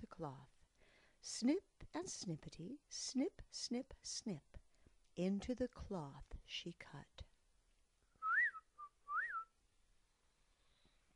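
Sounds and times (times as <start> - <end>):
speech: 0.2 - 0.6, 1.2 - 4.5, 5.2 - 7.3
person whistling to imitate a tea kettle: 8.2 - 9.6.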